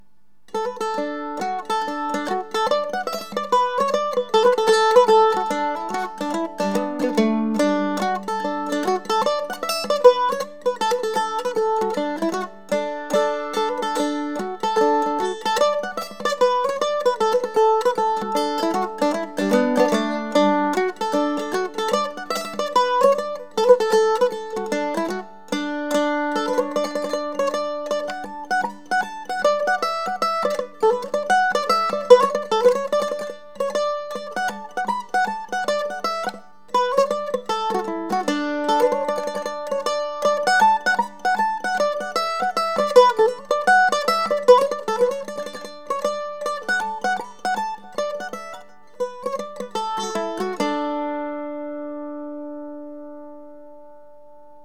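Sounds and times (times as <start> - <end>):
mandolin playing a hornpipe: 0.5 - 54.6.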